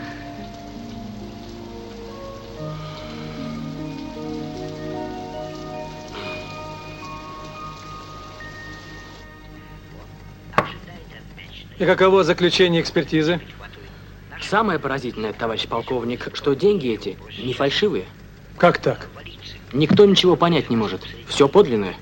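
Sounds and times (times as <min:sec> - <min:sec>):
steady rain falling: 0:00.0 - 0:21.9
single sharp crack: 0:10.6 - 0:10.9
speech: 0:11.8 - 0:13.6, 0:14.5 - 0:21.9.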